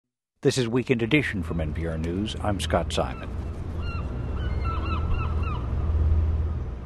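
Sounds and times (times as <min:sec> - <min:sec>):
speech: 0:00.4 - 0:03.4
seagulls squawking on the Portland Maine waterfront: 0:02.3 - 0:06.0.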